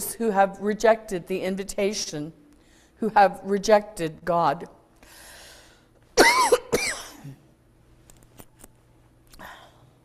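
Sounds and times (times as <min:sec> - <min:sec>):
speech: 0:00.2 - 0:02.4, 0:03.0 - 0:05.2
loud coughs during a sermon: 0:06.2 - 0:07.5.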